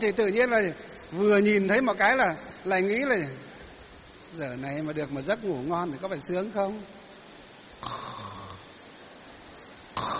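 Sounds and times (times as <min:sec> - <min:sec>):
speech: 0:00.0 - 0:03.4, 0:04.3 - 0:07.0
voice imitating snoring of a person falling asleep: 0:07.8 - 0:08.7, 0:10.0 - 0:10.1.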